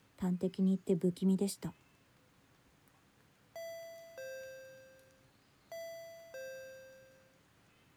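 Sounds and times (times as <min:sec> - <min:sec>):
speech: 0:00.2 - 0:01.8
electronic intercom doorbell two-tone ding-dong chime: 0:03.6 - 0:07.5.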